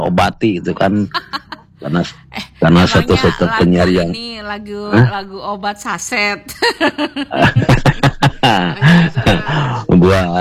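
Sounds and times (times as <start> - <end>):
strained voiced sounds: 0.0 - 6.1, 7.3 - 10.3
speech: 0.1 - 10.3
laughter: 0.8 - 4.1, 6.5 - 10.3
short rough coughs: 7.4 - 9.7.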